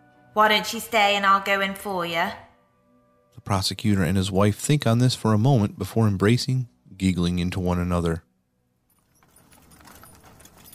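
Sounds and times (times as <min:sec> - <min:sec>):
speech: 0:00.4 - 0:02.4, 0:03.4 - 0:08.3
horse harness jingling: 0:08.9 - 0:10.7
horse hooves clopping: 0:08.9 - 0:10.7
horse-drawn coach wheels rumbling: 0:08.9 - 0:10.7.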